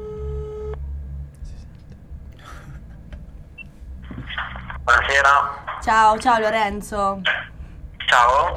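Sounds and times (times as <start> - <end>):
electronic outgoing call phone tone on speakerphone: 0.0 - 0.8
low room rumble: 0.0 - 8.5
speech: 5.1 - 7.4, 8.1 - 8.5.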